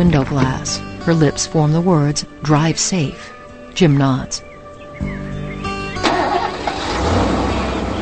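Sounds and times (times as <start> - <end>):
speech: 0.0 - 5.4
car engine starting: 6.0 - 7.9.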